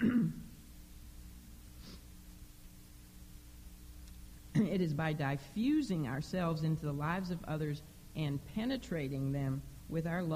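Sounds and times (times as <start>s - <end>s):
person clearing something stuck in the throat: 0.0s - 0.5s
speech: 4.6s - 10.3s.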